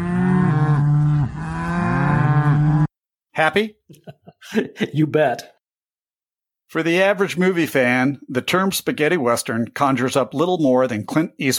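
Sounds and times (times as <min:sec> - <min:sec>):
cow mooing: 0:00.0 - 0:02.9
speech: 0:03.4 - 0:05.6, 0:06.7 - 0:11.5.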